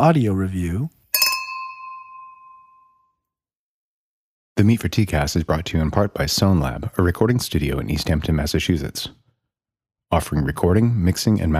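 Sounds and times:
speech: 0.0s - 1.0s, 4.6s - 9.2s, 10.1s - 11.5s
glasses clinking together: 1.1s - 3.0s.

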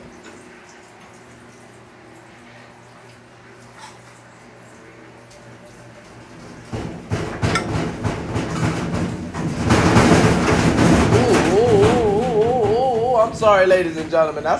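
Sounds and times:
noisy washing machine churning with rhythmic thumping and clattering: 6.6s - 14.5s
speech: 13.4s - 14.5s.

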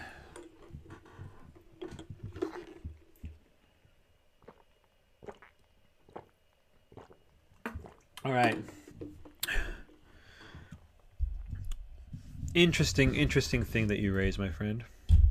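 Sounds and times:
person gulping and swallowing water: 0.1s - 3.4s, 4.4s - 10.0s
speech: 8.2s - 8.8s, 12.6s - 15.0s.

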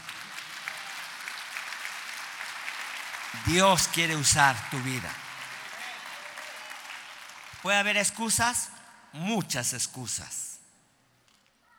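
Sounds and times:
audience applauding: 0.0s - 8.8s
speech: 3.3s - 5.2s, 7.6s - 10.4s.

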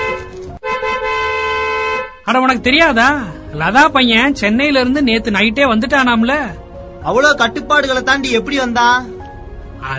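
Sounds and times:
government vehicle horn honking: 0.0s - 2.3s
speech: 2.3s - 9.1s, 9.8s - 9.9s.

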